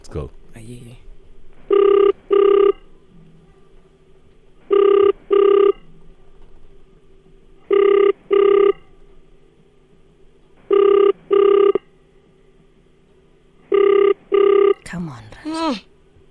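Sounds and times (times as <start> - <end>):
low hum: 0.0 - 16.2
speech: 0.1 - 1.1
telephone ringback tone on an outgoing call: 1.7 - 2.8, 4.7 - 5.8, 7.6 - 8.9, 10.7 - 11.9, 13.6 - 14.8.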